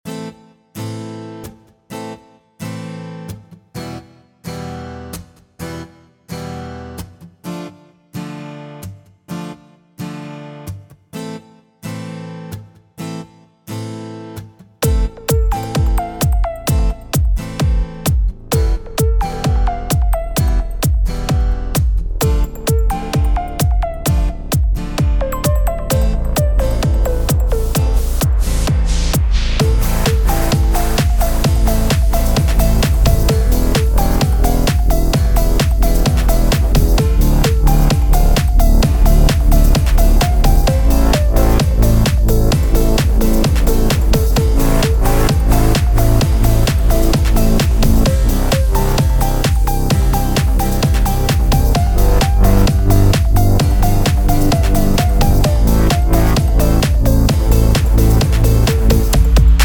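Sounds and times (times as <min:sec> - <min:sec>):
disco music track: 0:14.8 - 0:59.6.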